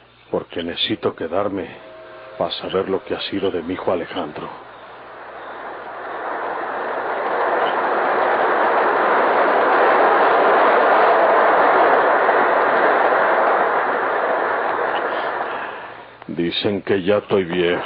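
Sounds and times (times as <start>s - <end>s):
speech: 0.3s - 4.7s, 16.4s - 17.8s
train approaching: 0.8s - 16.4s, 17.0s - 17.8s.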